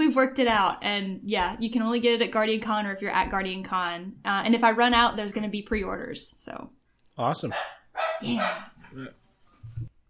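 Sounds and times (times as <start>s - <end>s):
speech: 0.2s - 9.2s
dog barking: 7.4s - 8.8s.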